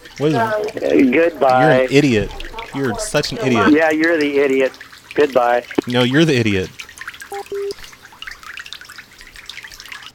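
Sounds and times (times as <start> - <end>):
tap running and dripping: 0.0 - 10.1
speech: 0.2 - 6.8
short electronic beeps: 7.3 - 7.8.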